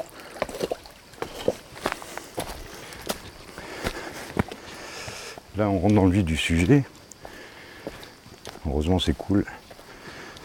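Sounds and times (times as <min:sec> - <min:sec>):
river water churning: 0:00.0 - 0:02.8
footsteps of people wading across a shallow river: 0:00.0 - 0:04.7
speech: 0:05.6 - 0:07.0, 0:08.7 - 0:09.6.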